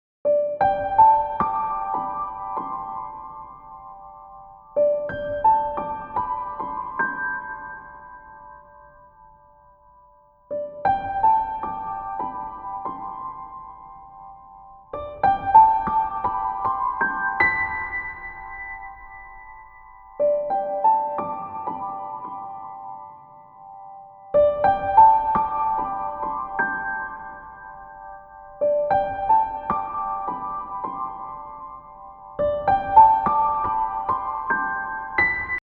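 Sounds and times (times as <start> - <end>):
simple piano piece: 0.2 - 35.6.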